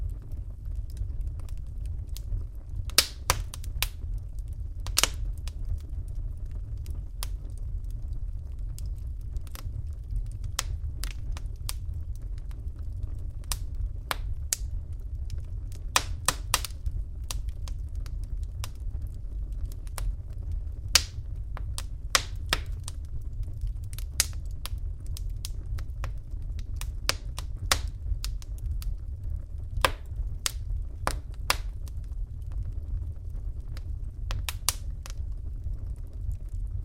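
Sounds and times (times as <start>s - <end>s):
fireplace fire burning with a steady low rumble: 0.0s - 36.8s.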